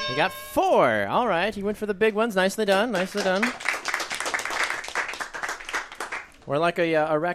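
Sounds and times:
speech: 0:00.1 - 0:03.7, 0:06.5 - 0:07.3
crowd applauding: 0:02.7 - 0:06.4.

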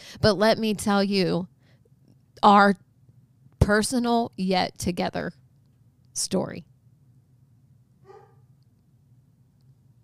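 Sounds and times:
low hum: 0:00.0 - 0:10.0
speech: 0:00.2 - 0:01.5, 0:02.4 - 0:02.8, 0:03.7 - 0:05.4, 0:06.2 - 0:06.7
dog barking: 0:08.0 - 0:08.5.

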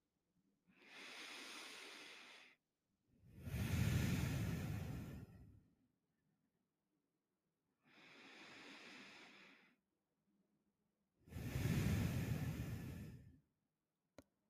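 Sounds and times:
slow deep breathing in and out: 0:00.7 - 0:02.7, 0:03.3 - 0:05.8, 0:07.8 - 0:09.8, 0:11.2 - 0:13.5.

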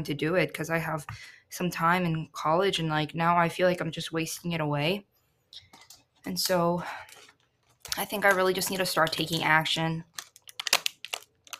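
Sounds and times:
speech: 0:00.0 - 0:07.2, 0:08.0 - 0:10.1
packet of kim seaweed snack opened with crinkling: 0:05.6 - 0:11.5.

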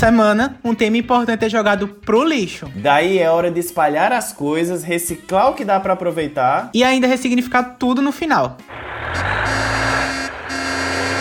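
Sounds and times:
speech: 0:00.0 - 0:09.8
garbage truck heavy engine rumbling while passing by: 0:08.7 - 0:11.1.

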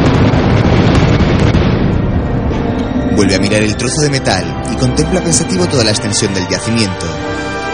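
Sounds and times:
explosions deep inside a mine: 0:00.0 - 0:06.1
speech: 0:03.2 - 0:07.6.

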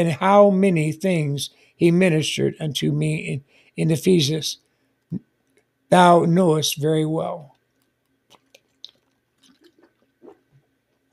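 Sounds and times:
speech: 0:00.0 - 0:05.3, 0:05.9 - 0:07.5
person sipping water: 0:08.3 - 0:10.8
soft wet gulps: 0:08.3 - 0:10.8.

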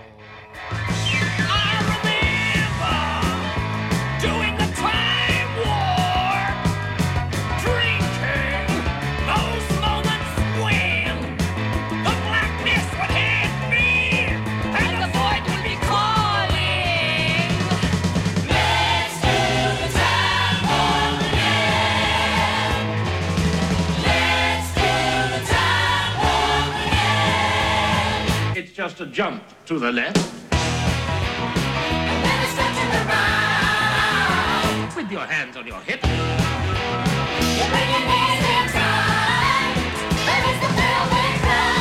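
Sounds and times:
bass: 0:00.0 - 0:28.6, 0:29.9 - 0:41.8
driving drums: 0:00.0 - 0:28.6, 0:29.4 - 0:41.8
guitar: 0:00.0 - 0:28.6, 0:30.4 - 0:41.8
upbeat rock song from a musical film: 0:00.2 - 0:28.6, 0:30.2 - 0:41.8
lively sung vocals in a theatrical ensemble style: 0:01.4 - 0:06.6, 0:12.1 - 0:23.0, 0:24.0 - 0:28.6, 0:32.0 - 0:35.1, 0:37.6 - 0:41.8
speech: 0:29.2 - 0:30.4, 0:35.1 - 0:36.2.

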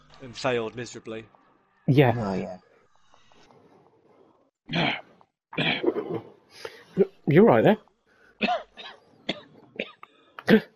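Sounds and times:
speech: 0:00.2 - 0:02.7, 0:04.7 - 0:05.0, 0:07.0 - 0:08.6, 0:10.5 - 0:10.7
harsh coughing: 0:04.7 - 0:06.3, 0:08.4 - 0:10.7.

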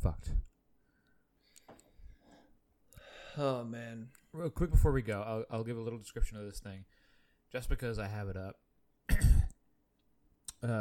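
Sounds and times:
speech: 0:00.0 - 0:00.5, 0:03.4 - 0:09.2, 0:10.6 - 0:10.7
person coughing after swallowing beer too quickly: 0:09.1 - 0:09.6.

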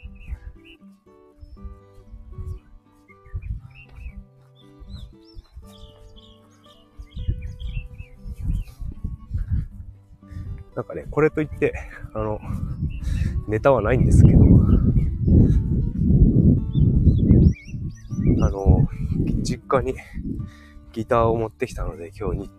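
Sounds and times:
birds chirping outdoors: 0:00.0 - 0:22.5
handling noise close to the microphone: 0:07.3 - 0:19.5
low rumbling: 0:07.3 - 0:20.6
speech: 0:10.8 - 0:12.7, 0:13.5 - 0:15.0, 0:19.7 - 0:22.5.

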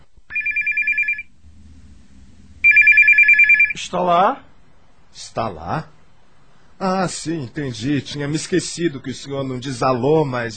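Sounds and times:
faint low hum: 0:00.0 - 0:10.5
telephone ringing for an incoming call: 0:00.3 - 0:01.3, 0:02.6 - 0:03.8
speech: 0:03.8 - 0:04.5, 0:05.2 - 0:06.0, 0:06.8 - 0:10.5.

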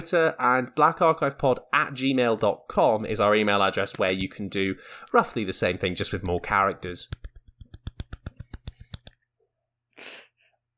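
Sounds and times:
speech: 0:00.0 - 0:07.3
soft hand claps: 0:07.1 - 0:09.2
breathy puff of air: 0:10.0 - 0:10.5.

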